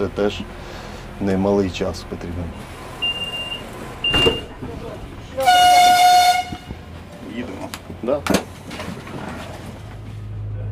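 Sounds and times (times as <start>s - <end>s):
speech: 0.0s - 2.8s, 7.4s - 8.5s
Ukrainian Railways train horn blasting as the train departs: 5.4s - 6.9s.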